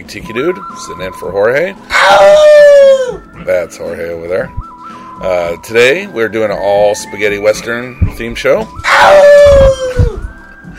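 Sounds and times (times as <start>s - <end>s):
speech: 0.0s - 9.8s
dog howling: 1.9s - 3.2s, 8.8s - 10.3s.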